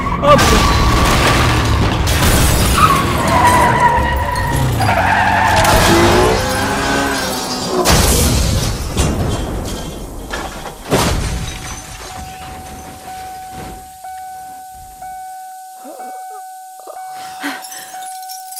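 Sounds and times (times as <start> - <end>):
car engine roaring while speeding: 0.0 - 8.9
car tires screeching: 0.0 - 8.9
violent car crash with crunching impacts and shattering: 0.2 - 14.0.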